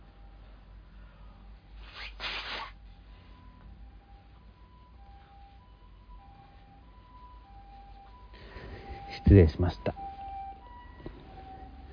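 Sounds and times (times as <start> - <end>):
faint two-tone ambulance siren passing by: 0.0 - 1.7, 3.0 - 11.9
speech: 9.2 - 10.0.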